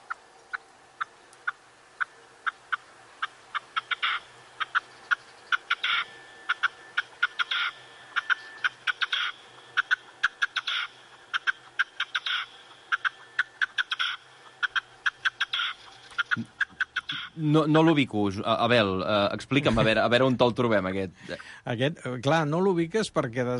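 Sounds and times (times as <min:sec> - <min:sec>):
red-legged partridge calling in harsh chuffing notes: 0:00.0 - 0:18.0
speech: 0:17.4 - 0:23.5.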